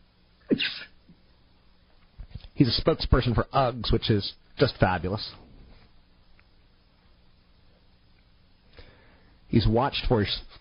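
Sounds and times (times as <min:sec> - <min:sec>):
person sneezing: 0:00.5 - 0:01.0
speech: 0:00.6 - 0:00.8, 0:02.6 - 0:05.4, 0:09.5 - 0:10.6.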